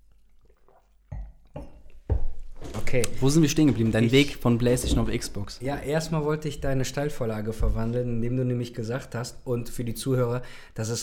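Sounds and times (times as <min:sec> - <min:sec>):
glasses clinking together in a toast: 0:01.1 - 0:02.3
speech: 0:02.9 - 0:11.0.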